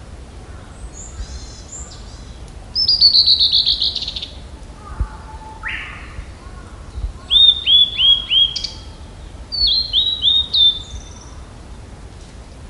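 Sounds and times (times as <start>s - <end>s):
blue-and-white flycatcher song: 1.0s - 4.4s, 6.9s - 11.4s.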